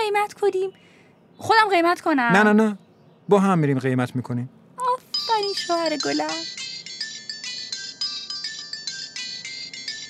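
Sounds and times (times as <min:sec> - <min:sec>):
speech: 0:00.3 - 0:04.6, 0:05.4 - 0:06.6
phone ringtone ringing unanswered: 0:04.8 - 0:10.0.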